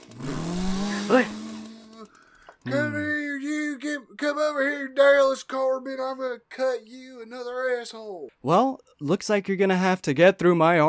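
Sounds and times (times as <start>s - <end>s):
voice mimicking a chainsaw starting up and revving: 0.0s - 3.8s
speech: 1.1s - 1.4s, 4.1s - 10.8s.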